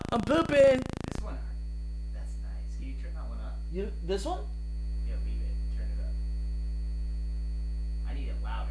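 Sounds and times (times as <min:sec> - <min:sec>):
steady deep electrical hum: 0:00.0 - 0:08.6
speech: 0:00.1 - 0:01.0, 0:03.7 - 0:04.6.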